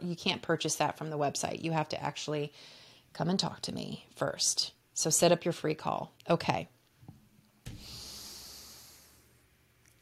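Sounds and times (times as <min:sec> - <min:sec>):
speech: 0:00.0 - 0:06.8
single long breath into a microphone: 0:02.5 - 0:03.1, 0:07.7 - 0:09.4.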